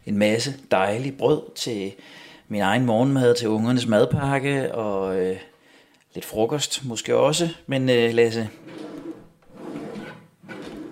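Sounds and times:
speech: 0.1s - 5.5s, 6.1s - 8.9s
empty wooden drawer sliding open: 8.5s - 10.8s.

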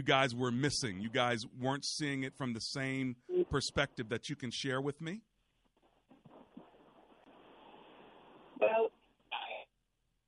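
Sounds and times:
speech: 0.0s - 5.3s
tinny phone line hissing and crackling: 6.2s - 9.7s.

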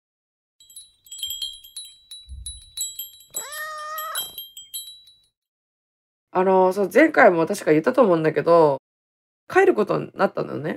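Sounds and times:
high tinkling tones: 0.6s - 5.4s
cat meowing: 3.4s - 4.4s
speech: 6.4s - 8.8s, 9.5s - 10.7s.

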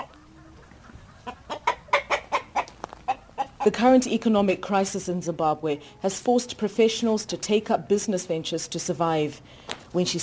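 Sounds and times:
chickens clucking in a chicken coop in Zimbabwe: 0.0s - 4.6s
speech: 3.6s - 10.2s.

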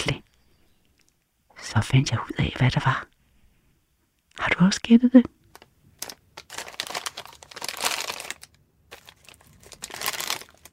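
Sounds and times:
speech: 1.8s - 3.1s, 4.4s - 5.4s
paper and plastic cheese snack and breadstick wrappers crinkling: 5.4s - 10.7s.

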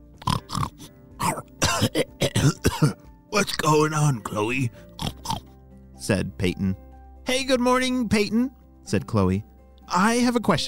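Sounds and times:
pig grunting and snorting: 0.2s - 1.4s, 5.0s - 5.5s
speech: 1.8s - 3.0s, 3.7s - 4.9s, 6.0s - 10.6s.

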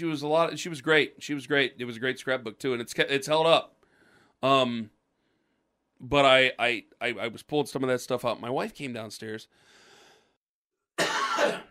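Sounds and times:
speech: 0.0s - 3.8s, 4.4s - 5.0s, 6.0s - 9.8s
faint breathy exhale: 3.8s - 4.4s, 9.5s - 10.4s
harsh chesty cough: 11.0s - 11.6s.

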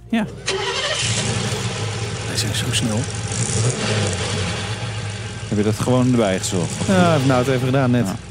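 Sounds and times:
speech: 0.1s - 1.1s, 2.4s - 4.6s, 5.5s - 8.2s
3.5-liter V8 car engine revving: 0.2s - 8.2s.

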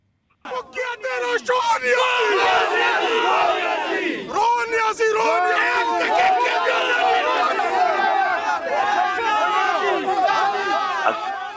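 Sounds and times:
speech: 0.4s - 6.6s
large crowd of supporters chanting and cheering: 0.5s - 11.5s.

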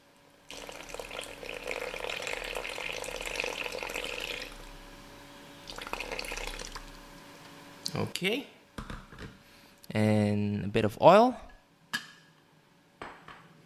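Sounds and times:
water poured into flour for bao dough: 0.5s - 4.6s, 5.7s - 7.0s
speech: 7.9s - 8.6s, 10.0s - 11.5s.

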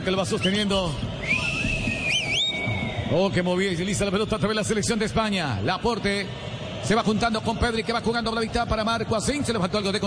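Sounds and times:
speech: 0.0s - 1.4s, 3.1s - 10.0s
low rumble of stadium crowd noise: 0.0s - 10.0s
person whistling at a football match: 1.2s - 3.1s.

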